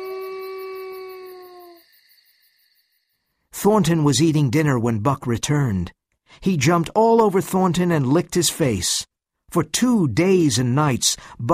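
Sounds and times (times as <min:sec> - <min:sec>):
lone wolf howling mournfully: 0:00.0 - 0:01.9
speech: 0:03.6 - 0:11.5.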